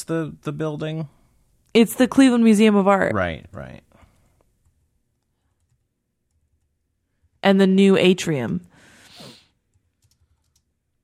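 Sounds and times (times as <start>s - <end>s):
speech: 0.0s - 3.9s, 7.4s - 8.7s
typing on a computer keyboard: 5.5s - 6.7s, 9.8s - 11.0s.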